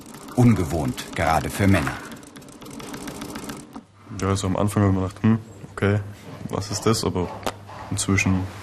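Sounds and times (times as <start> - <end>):
sewing machine stitching as a saddler quilts diamond shapes: 0.0 - 3.8
speech: 0.4 - 2.1, 4.2 - 8.6.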